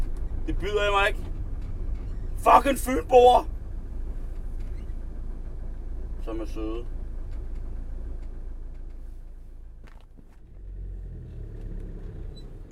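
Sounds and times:
car engine idling in stalled traffic in Odense: 0.0 - 12.7
speech: 0.5 - 1.4, 2.4 - 3.5, 6.3 - 6.9
faint scuffing or shuffling sounds: 8.7 - 10.5.

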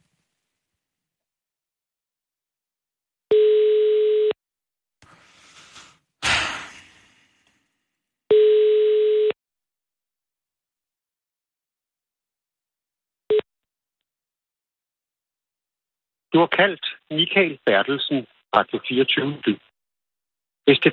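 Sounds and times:
telephone ringback tone during outgoing call: 3.3 - 4.4, 8.3 - 9.4
speech: 16.4 - 19.7, 20.7 - 20.9.

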